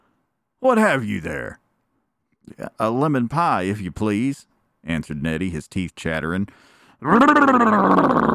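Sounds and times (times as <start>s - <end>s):
speech: 0.6s - 1.6s, 2.4s - 8.3s
voice imitating a sea lion's growl: 7.0s - 8.3s.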